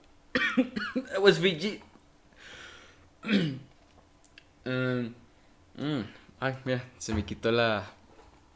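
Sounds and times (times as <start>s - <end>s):
speech: 0.5s - 1.9s, 3.2s - 3.7s, 4.7s - 5.2s, 5.8s - 8.0s
breathy intake of air: 2.4s - 3.0s
short cough: 3.2s - 3.7s
throat clearing: 3.2s - 3.7s.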